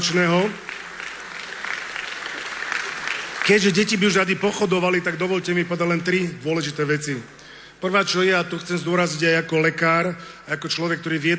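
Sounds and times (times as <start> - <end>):
speech: 0.0 - 0.7, 3.5 - 11.3
crowd clapping for children at a gathering before a march: 0.0 - 5.0.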